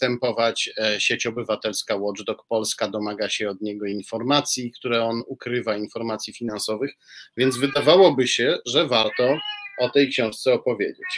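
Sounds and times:
speech: 0.0s - 11.1s
frightened tomcat meowing: 7.4s - 8.2s, 8.8s - 11.1s.

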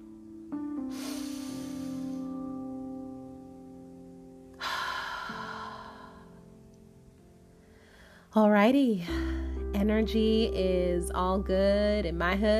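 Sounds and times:
slow deep breath taken before starting: 0.9s - 2.5s, 4.6s - 6.4s, 7.6s - 8.3s
speech: 8.4s - 12.5s.

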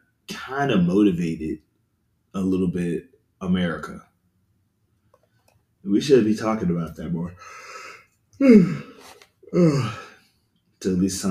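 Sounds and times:
speech: 0.5s - 1.7s, 2.3s - 4.1s, 5.8s - 7.6s, 8.4s - 10.0s, 10.8s - 11.2s
big human yawn with groaning breaths: 8.4s - 10.2s.

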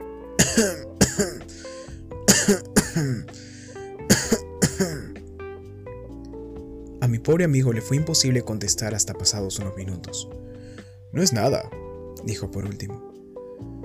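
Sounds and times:
harsh raspy wheezy coughing fit: 0.4s - 5.2s
speech: 0.6s - 1.8s, 2.5s - 3.4s, 7.2s - 13.1s.

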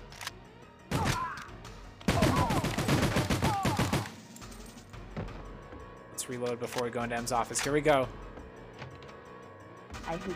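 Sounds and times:
video-game gunfire in a shooter mission: 2.1s - 4.3s
speech: 6.3s - 8.3s, 10.1s - 10.3s.

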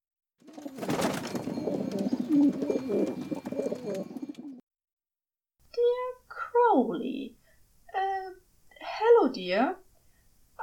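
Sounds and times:
flock of pigeons cooing: 0.5s - 4.6s
speech: 2.3s - 4.2s, 6.7s - 7.4s, 9.2s - 9.8s.

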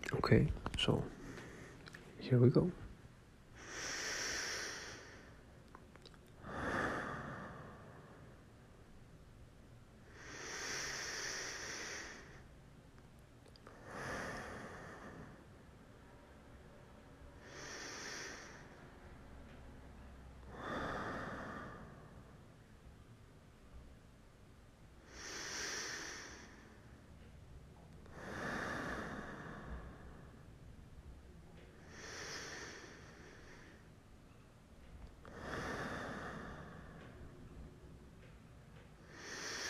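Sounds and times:
speech: 0.1s - 1.2s, 2.3s - 2.8s
person breathing deeply: 3.5s - 5.5s, 6.4s - 8.5s, 10.1s - 12.5s, 13.7s - 15.5s, 17.4s - 18.9s, 20.5s - 22.5s, 25.0s - 26.9s, 28.1s - 30.5s, 31.8s - 33.9s, 35.3s - 37.3s, 39.0s - 39.6s.

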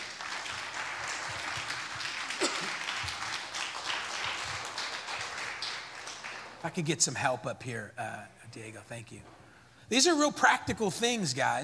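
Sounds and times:
standing audience clapping in praise to God: 0.0s - 7.0s
speech: 6.6s - 11.6s.

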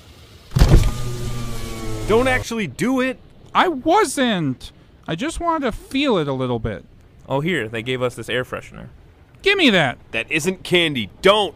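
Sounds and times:
car power window rolling down at a car wash: 0.5s - 2.4s
speech: 2.1s - 11.5s.

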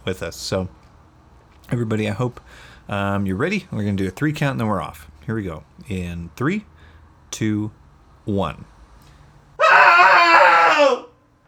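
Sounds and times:
speech: 0.0s - 0.8s, 1.7s - 6.7s, 7.3s - 8.7s
several voices screaming together: 9.6s - 11.2s.

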